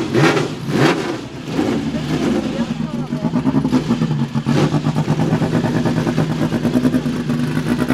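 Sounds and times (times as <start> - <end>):
twin-turbocharged car engine revving while driving on a narrow road: 0.0 - 7.9
indistinct talk: 1.8 - 3.5.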